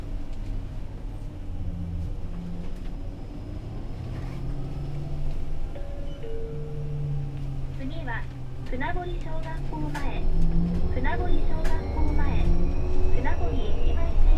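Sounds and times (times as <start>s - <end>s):
bus engine rumbling as it pulls away from a stop: 0.0s - 14.3s
speech: 8.8s - 13.8s.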